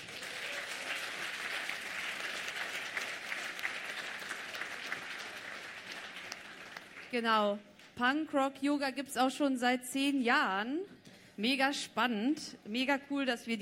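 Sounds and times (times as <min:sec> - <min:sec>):
audience applause: 0:00.0 - 0:07.1
speech: 0:07.1 - 0:13.6.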